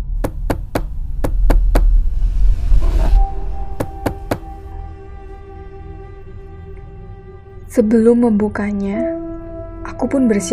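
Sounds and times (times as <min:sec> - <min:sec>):
low rumble: 0:00.0 - 0:07.6
knocking on a door: 0:00.2 - 0:01.9, 0:03.8 - 0:04.6
speech: 0:07.8 - 0:09.2, 0:10.0 - 0:10.5.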